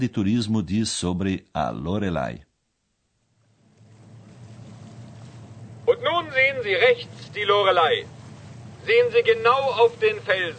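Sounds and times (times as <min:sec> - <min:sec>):
speech: 0:00.0 - 0:02.5, 0:06.0 - 0:08.2, 0:08.8 - 0:10.5
faint wash of broadband noise: 0:00.0 - 0:10.5
boat engine droning on a river: 0:03.2 - 0:10.5.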